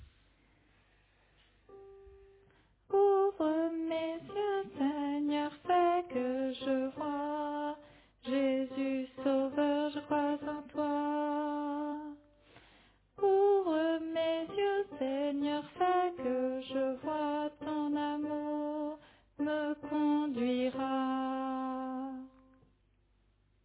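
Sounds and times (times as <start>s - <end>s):
alto voice singing a chorale: 2.9s - 12.3s, 13.2s - 22.5s.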